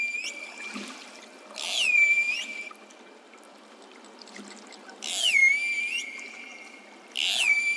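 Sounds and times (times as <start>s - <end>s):
pilot whale squealing whistles underwater: 0.0s - 0.9s, 1.6s - 2.9s, 5.0s - 7.7s.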